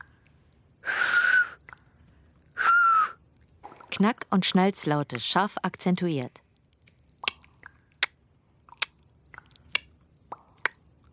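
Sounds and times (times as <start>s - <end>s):
breathy two-finger whistles: 0.9s - 1.6s, 2.6s - 3.2s
speech: 4.0s - 6.4s.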